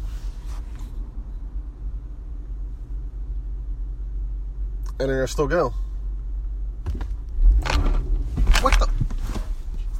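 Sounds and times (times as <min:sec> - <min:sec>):
low engine-like rumble: 0:00.0 - 0:09.9
speech: 0:05.0 - 0:05.9
car bumping into another vehicle: 0:06.8 - 0:09.7.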